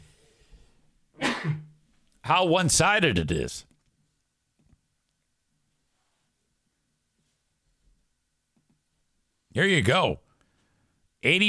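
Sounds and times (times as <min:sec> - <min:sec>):
person sneezing: 0:01.2 - 0:01.7
speech: 0:02.3 - 0:03.7, 0:09.6 - 0:10.2, 0:11.2 - 0:11.4.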